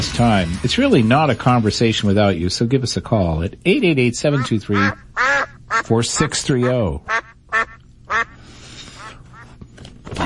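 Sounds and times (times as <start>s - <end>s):
speech: 0.0s - 8.3s
duck quacking: 4.3s - 8.4s.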